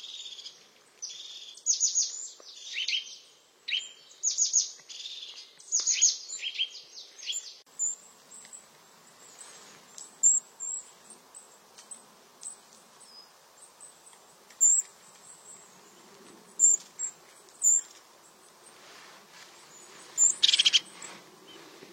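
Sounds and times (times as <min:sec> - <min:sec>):
European crested tit singing buzzy, purring trills: 0:00.0 - 0:15.8, 0:16.6 - 0:17.9, 0:19.7 - 0:21.6
European crested tit thin calls: 0:00.0 - 0:18.0, 0:19.6 - 0:21.7
faint background hiss: 0:00.0 - 0:21.9.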